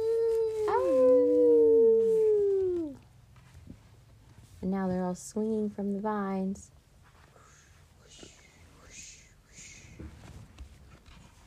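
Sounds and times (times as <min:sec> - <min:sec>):
child imitating a howl at the moon: 0:00.0 - 0:03.0
speech: 0:05.1 - 0:06.8.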